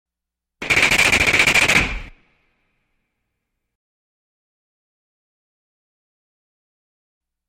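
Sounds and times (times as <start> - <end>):
automatic rifle intermittent burst fire: 0.6 - 2.5.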